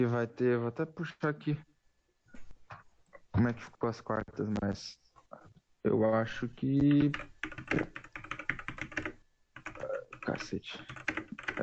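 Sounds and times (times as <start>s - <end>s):
speech: 0.0s - 1.7s, 3.4s - 5.0s, 5.8s - 8.1s, 10.3s - 11.6s
rapid clicky computer keyboard typing: 6.8s - 11.6s
man muttering an exclamation: 9.8s - 10.3s.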